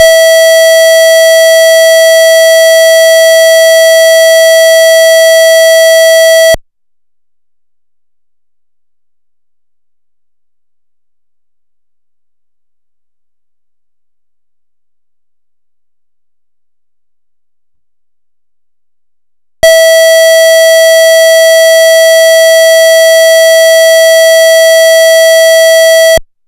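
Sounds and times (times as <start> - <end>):
interrupted signaling warning tone for important message: 0.0 - 6.6, 19.6 - 26.2.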